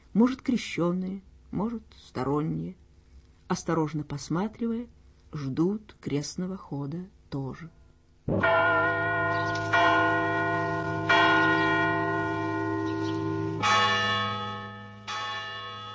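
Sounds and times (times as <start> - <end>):
speech: 0.2 - 2.8, 3.5 - 8.9
church bell tolling with tinny metallic strokes: 8.3 - 15.9.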